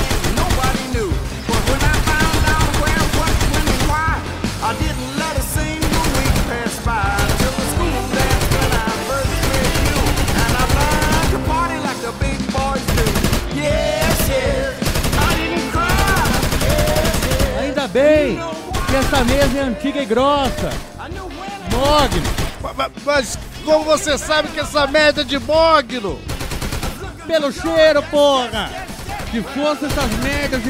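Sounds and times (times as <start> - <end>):
heavy gunfire from police weapons: 0.0 - 17.8, 18.7 - 19.8, 20.4 - 21.0, 21.7 - 22.8, 26.2 - 27.2, 28.8 - 30.6
speech: 19.4 - 20.9, 21.8 - 26.3, 27.3 - 30.6.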